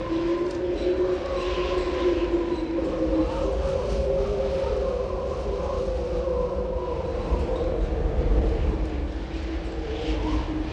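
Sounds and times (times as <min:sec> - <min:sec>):
medium wind: 0:00.0 - 0:10.7.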